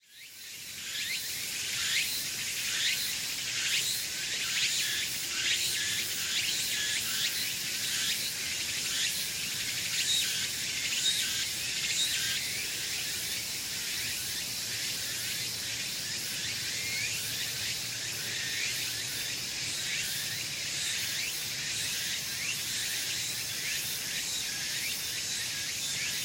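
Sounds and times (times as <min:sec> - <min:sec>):
Walker's cicada Meimuna opalifera song: 0:00.1 - 0:26.2.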